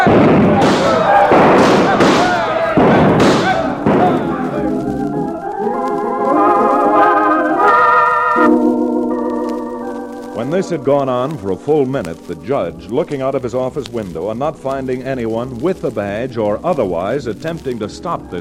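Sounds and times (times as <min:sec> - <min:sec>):
several pistols firing in a shooting contest: 0:00.0 - 0:04.6
sustained tonal sound: 0:03.7 - 0:12.9
speech: 0:10.6 - 0:18.4.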